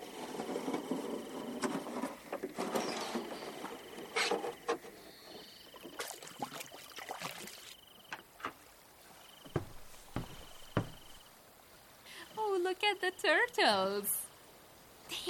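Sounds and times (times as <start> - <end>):
soft steady hiss: 0.0 - 15.2
oar strokes splashing in rising tidal water in the Hara Forest: 1.7 - 11.3
sharp knocks: 9.5 - 11.2
speech: 13.0 - 14.2.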